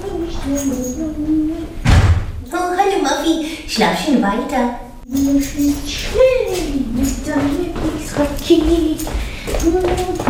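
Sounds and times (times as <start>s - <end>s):
speech: 0.5s - 1.4s, 3.2s - 10.2s
door shutting with a loud thump: 1.8s - 2.4s.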